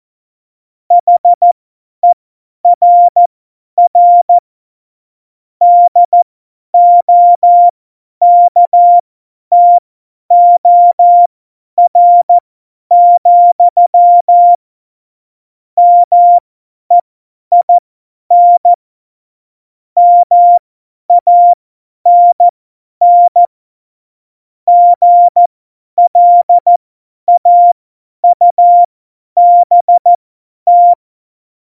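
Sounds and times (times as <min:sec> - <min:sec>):
Morse code CW keying for a Morse course: 0:01.0 - 0:02.2, 0:02.8 - 0:03.2, 0:03.9 - 0:04.4, 0:05.6 - 0:06.2, 0:06.8 - 0:14.6, 0:15.8 - 0:18.8, 0:20.0 - 0:20.6, 0:21.2 - 0:23.5, 0:24.7 - 0:31.0.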